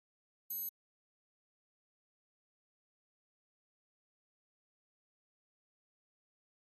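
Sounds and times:
electronic flash beep: 0.5 - 0.7.

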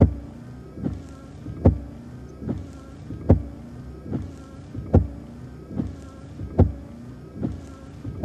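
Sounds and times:
Saab wiper blades on windshield: 0.0 - 8.2.

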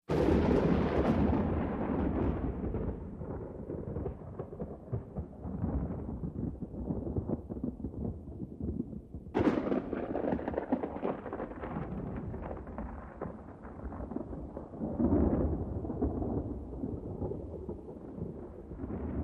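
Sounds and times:
distant thunder: 0.1 - 19.2.

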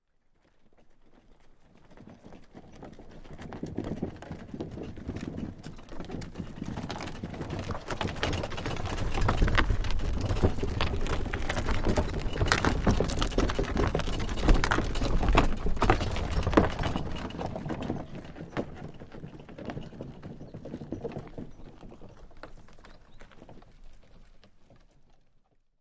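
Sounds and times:
mule cart walking: 0.1 - 25.6.

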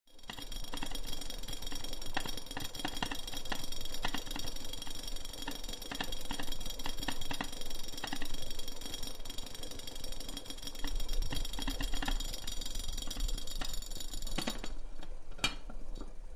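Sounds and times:
water boiling in a metal vessel with bubbles: 0.1 - 16.2.

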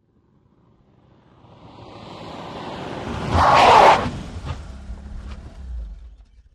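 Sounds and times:
Austin Montego skidding outdoors: 2.4 - 5.9.

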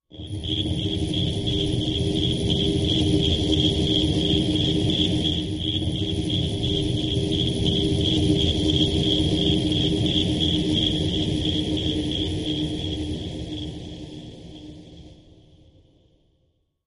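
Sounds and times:
electric ambience: 0.2 - 13.8
machine noise: 0.2 - 13.9
crickets: 0.2 - 15.0.

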